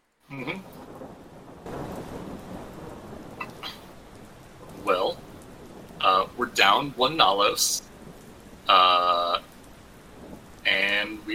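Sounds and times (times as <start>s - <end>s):
pouring rain falling on an empty street: 0.0s - 11.3s
speech: 0.3s - 0.8s, 6.6s - 7.9s.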